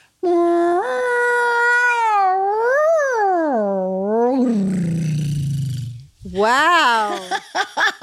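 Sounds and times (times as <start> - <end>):
human voice imitating humpback whale song: 0.2 - 6.4
laughter: 7.0 - 8.0.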